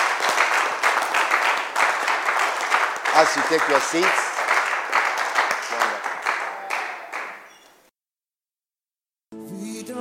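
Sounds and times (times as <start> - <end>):
church congregation clapping: 0.0 - 7.9
speech: 3.2 - 4.3.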